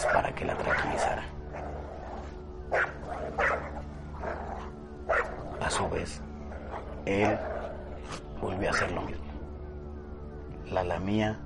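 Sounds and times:
dog growling and barking: 0.0 - 9.2
speech: 6.0 - 6.3, 7.1 - 7.5, 8.6 - 9.2, 10.7 - 11.4.

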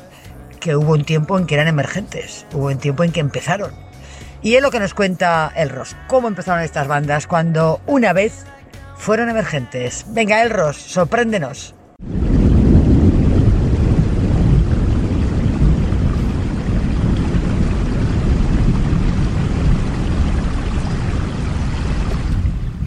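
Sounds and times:
speech: 0.6 - 12.3
heavy rain pouring down: 12.0 - 22.8.

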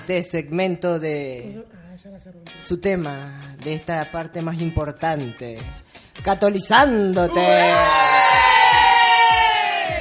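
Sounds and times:
speech: 0.0 - 8.6
full room of guests cheering and shouting: 7.2 - 9.9.

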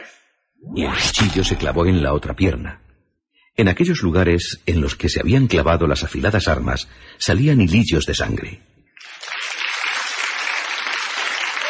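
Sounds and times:
speech: 0.1 - 2.8, 3.6 - 8.7
crowd applauding: 9.0 - 11.6.

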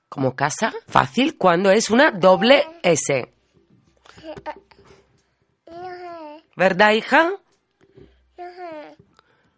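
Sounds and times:
speech: 0.2 - 3.4, 4.1 - 4.7, 5.7 - 7.4
young girl babbling in high-pitched bursts: 4.1 - 4.8, 5.7 - 6.6, 8.4 - 9.0.

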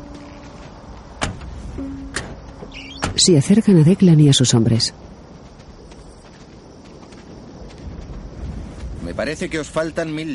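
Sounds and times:
low steady hum: 0.0 - 5.2
car doors thunking: 1.2 - 3.2
speech: 3.2 - 5.1, 9.2 - 10.3.

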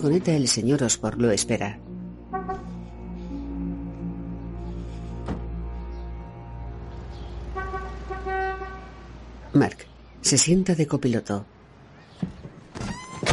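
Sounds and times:
speech: 0.0 - 2.0, 9.6 - 11.6
car engine rumbling as it pulls up and parks on a street: 0.0 - 10.5
sustained horn-like tones: 1.8 - 9.3.

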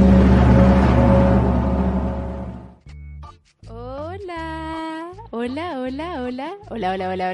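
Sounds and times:
gong ringing: 0.0 - 2.8
speech: 6.3 - 7.3.

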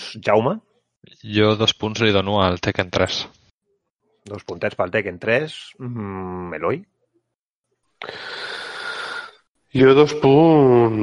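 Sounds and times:
speech: 0.1 - 3.4, 4.2 - 6.9, 8.0 - 8.4, 9.7 - 11.0
loud intake of breath: 8.0 - 9.5.

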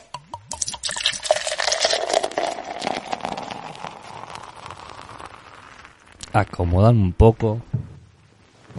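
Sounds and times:
beer pouring into a glass in a home living room in San Juan Argentina: 0.2 - 6.3
speech: 6.4 - 7.8.

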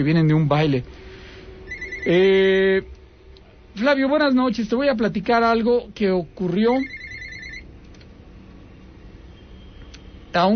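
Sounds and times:
speech: 0.0 - 1.1, 2.0 - 3.0, 3.8 - 7.0, 10.3 - 10.5
telephone ringing with an incoming call: 1.7 - 2.3, 6.7 - 7.7.

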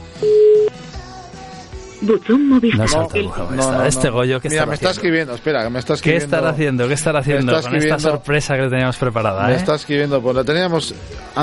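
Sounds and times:
speech: 0.2 - 0.4, 2.0 - 11.4
steady electronic telephone tone: 0.2 - 0.7.

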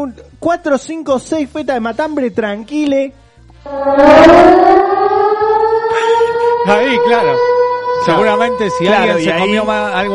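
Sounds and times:
speech: 0.0 - 5.0, 6.0 - 10.1
loud alarm siren wailing: 3.6 - 10.1
low rumbling pulse: 3.6 - 10.1.

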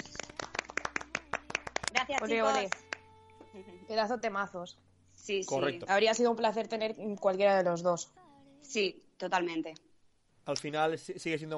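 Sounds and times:
small group applauding: 0.0 - 3.0
speech: 2.1 - 2.9, 3.6 - 9.8, 10.4 - 11.5.

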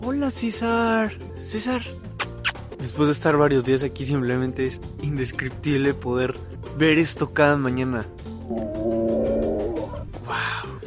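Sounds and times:
speech: 0.0 - 2.1, 2.8 - 8.6
male lion growling: 8.4 - 10.2.

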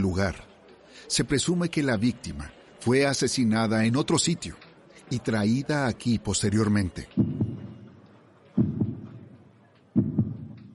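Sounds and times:
speech: 0.0 - 7.4
heavy pounding heartbeat: 7.2 - 7.9, 8.6 - 9.3, 10.0 - 10.7.

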